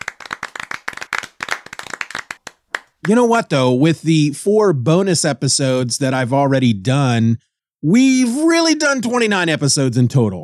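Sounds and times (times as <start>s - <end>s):
enthusiastic applause from a small group: 0.0s - 3.2s
speech: 3.1s - 10.4s.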